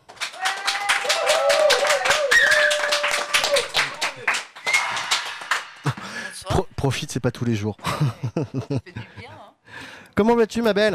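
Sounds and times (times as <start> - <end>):
enthusiastic audience applause welcoming a guest: 0.0 - 6.2
people cheering: 0.2 - 6.0
speech: 6.8 - 9.4, 10.2 - 10.9
laughter: 7.8 - 9.4.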